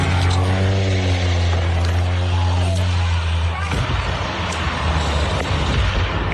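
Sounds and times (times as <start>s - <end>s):
seaplane engine droning: 0.0s - 6.3s.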